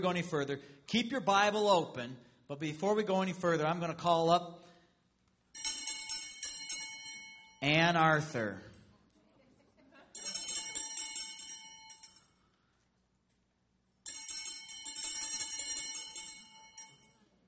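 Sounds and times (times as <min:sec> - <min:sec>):
speech: 0:00.0 - 0:04.7, 0:07.6 - 0:08.7
handbell ringing: 0:05.5 - 0:07.8, 0:10.2 - 0:12.4, 0:14.0 - 0:17.3.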